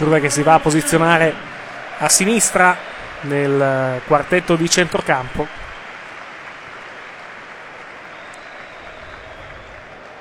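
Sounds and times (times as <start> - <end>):
speech: 0.0 - 5.6
stadium crowd at a football match applauding a player substitution: 0.0 - 10.1.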